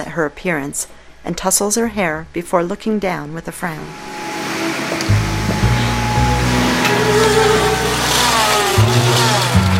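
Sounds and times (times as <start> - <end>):
speech: 0.2 - 4.2
vacuum cleaner pushed across a floor: 3.9 - 9.7.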